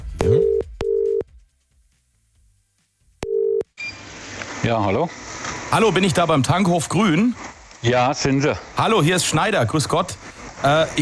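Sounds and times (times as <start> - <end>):
telephone line beeps as a call is placed to a petrol station: 0.2 - 1.2, 3.2 - 4.0
speech: 4.7 - 11.0.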